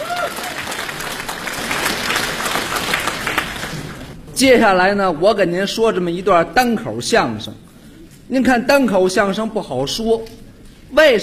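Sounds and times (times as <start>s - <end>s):
audience applause welcoming comic crosstalk performers onto a stage: 0.0s - 4.2s
speech: 4.4s - 7.6s, 8.3s - 11.2s.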